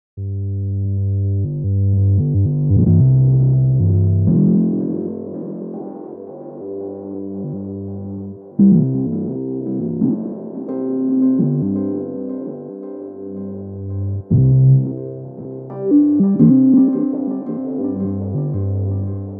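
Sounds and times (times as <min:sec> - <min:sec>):
Rhodes electric piano through octave pedal: 0:00.9 - 0:19.3.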